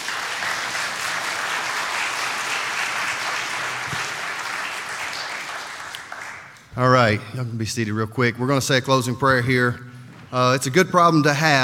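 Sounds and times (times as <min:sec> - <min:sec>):
audience applause: 0:00.0 - 0:06.6
speech: 0:06.8 - 0:11.6.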